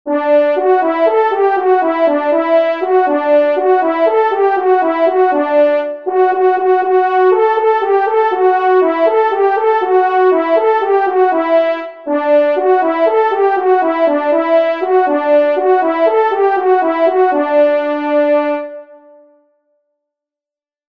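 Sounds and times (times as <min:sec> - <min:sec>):
hunting horns playing solo: 0:00.1 - 0:19.2.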